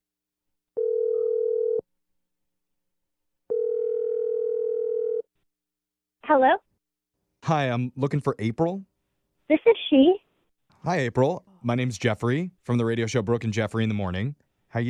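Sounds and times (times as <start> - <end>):
long steady telephone ringback tones: 0.8 - 1.8, 3.5 - 5.2
speech: 6.3 - 6.6, 7.4 - 8.9, 9.5 - 10.2, 10.8 - 14.8.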